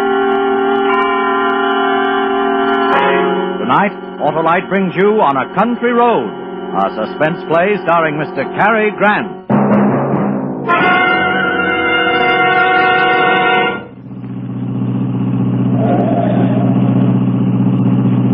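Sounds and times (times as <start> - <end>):
long bright horn-like tone: 0.0 - 9.5, 10.6 - 14.0
car engine rumbling while driving in heavy traffic: 0.0 - 9.6, 10.5 - 18.3
speech: 3.7 - 9.6.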